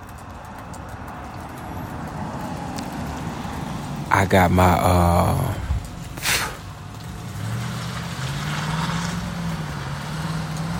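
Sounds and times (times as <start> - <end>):
engine of a new truck pulling up: 0.0 - 10.7
speech: 4.2 - 5.6
brief broadband burst of noise: 5.6 - 6.8.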